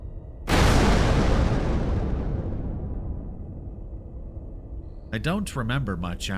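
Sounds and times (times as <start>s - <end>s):
low hum: 0.0s - 6.3s
massive explosion blast and shockwave rumble: 0.5s - 4.8s
speech: 5.1s - 6.3s.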